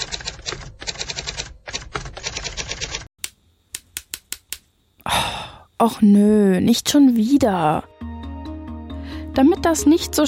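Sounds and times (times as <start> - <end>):
mechanical typewriter keystrokes: 0.0 - 3.1
speech: 5.2 - 7.9, 9.4 - 10.2.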